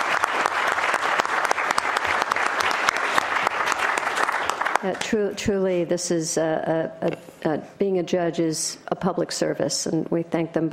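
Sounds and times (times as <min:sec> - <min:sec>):
room full of people applauding: 0:00.0 - 0:05.0
speech: 0:04.8 - 0:10.7.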